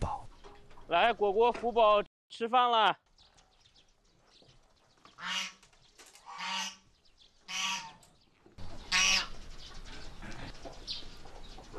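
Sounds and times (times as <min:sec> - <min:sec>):
speech: 0:00.9 - 0:03.0
two geese honking at feeding time on grassland: 0:05.2 - 0:05.6, 0:06.2 - 0:06.8, 0:07.5 - 0:08.0, 0:08.8 - 0:09.4.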